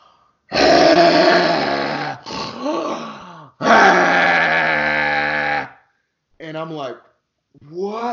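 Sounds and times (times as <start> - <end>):
man snoring loudly at night: 0.5 - 3.0, 3.6 - 5.7
speech: 6.4 - 8.1.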